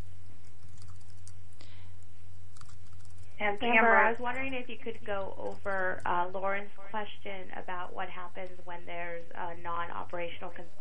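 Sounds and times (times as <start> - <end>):
steady low electrical hum: 0.0 - 10.7
typing on a computer keyboard: 0.5 - 1.4, 2.5 - 3.4
speech: 3.4 - 10.7.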